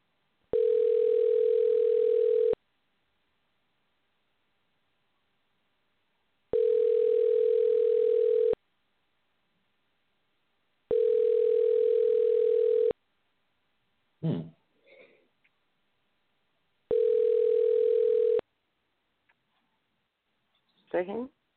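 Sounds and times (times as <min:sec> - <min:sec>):
telephone ringing tone on an incoming call: 0:00.5 - 0:02.6, 0:06.5 - 0:08.6, 0:10.9 - 0:13.0, 0:16.9 - 0:18.4.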